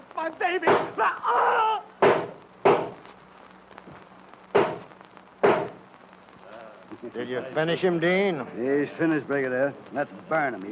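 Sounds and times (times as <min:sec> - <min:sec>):
speech: 0:00.2 - 0:01.8, 0:07.0 - 0:10.7
gunshots from two guns: 0:04.5 - 0:05.8.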